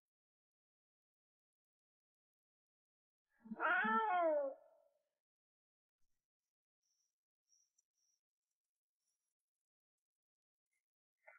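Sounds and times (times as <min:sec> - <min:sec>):
wild cat meowing: 0:03.4 - 0:04.6.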